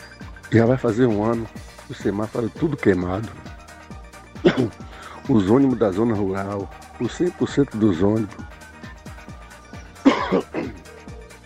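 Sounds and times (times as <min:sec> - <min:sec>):
speech: 0:00.5 - 0:03.5, 0:04.4 - 0:08.6, 0:10.3 - 0:10.5
man clearing throat: 0:04.4 - 0:04.9, 0:10.0 - 0:11.0
man coughing heavily: 0:04.4 - 0:05.0, 0:10.0 - 0:11.0.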